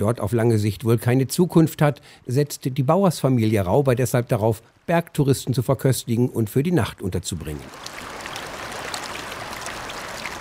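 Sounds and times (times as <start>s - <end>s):
speech: 0.0s - 8.2s
glacier-fed mountain river rushing through a wide gravel bed in an upper alpine valley: 7.7s - 10.4s.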